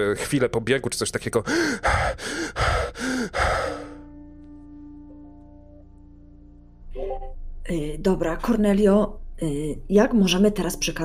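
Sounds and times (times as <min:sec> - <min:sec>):
speech: 0:00.0 - 0:03.7, 0:07.7 - 0:11.0
feverish person panting heavily: 0:01.4 - 0:04.1.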